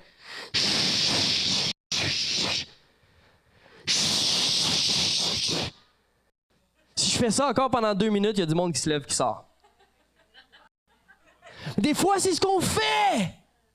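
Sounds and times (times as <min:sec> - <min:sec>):
voice imitating a cymbal with a hissing tsss: 0:00.4 - 0:02.8, 0:03.8 - 0:05.8
speech: 0:07.2 - 0:09.5, 0:11.8 - 0:13.4
laughter: 0:09.6 - 0:11.7.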